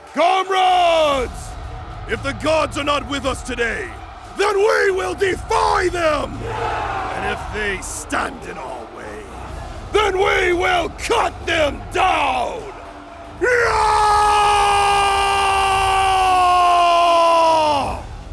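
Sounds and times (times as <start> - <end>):
war cry: 0.0 - 18.3.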